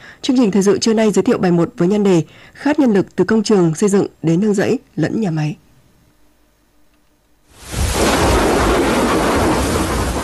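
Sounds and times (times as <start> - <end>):
speech: 0.2 - 5.6
heavy rain from early rainy-season storm in Đắk Lắk province: 7.5 - 10.2
rolling thunder from early rainy-season storm in Đắk Lắk province: 7.6 - 10.2.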